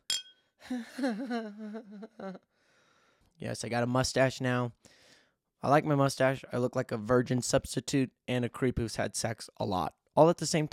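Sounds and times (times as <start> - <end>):
glasses clinking in a toast: 0.0 - 0.4
speech: 0.7 - 2.5, 3.4 - 5.0, 5.6 - 10.7.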